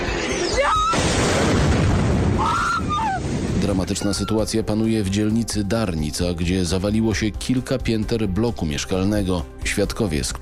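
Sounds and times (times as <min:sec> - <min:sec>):
Russian missile explosion in a city: 0:00.9 - 0:03.9
speech: 0:03.9 - 0:10.4.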